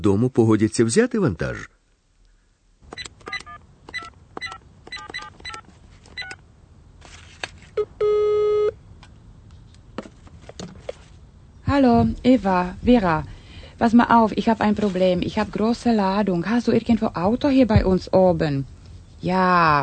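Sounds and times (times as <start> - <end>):
speech: 0.0 - 1.8, 11.8 - 19.8
touch-tone beeps of a phone number being dialed: 3.0 - 5.6
telephone ringing tone: 7.8 - 8.8.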